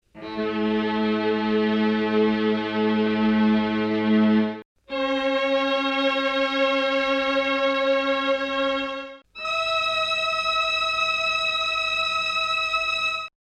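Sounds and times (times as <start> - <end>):
strings: 0.1 - 13.3
mellotron: 0.2 - 13.3.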